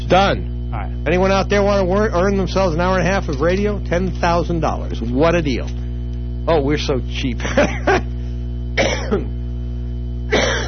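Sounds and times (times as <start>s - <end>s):
steady low electrical hum: 0.0s - 10.6s
speech: 0.1s - 5.8s, 6.4s - 8.1s, 9.1s - 9.3s
person coughing raspily: 8.7s - 9.4s, 10.3s - 10.6s.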